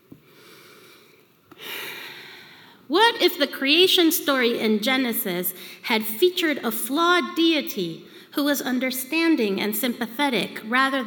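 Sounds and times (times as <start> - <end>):
deep breath: 0.2 - 2.9
speech: 2.9 - 11.0.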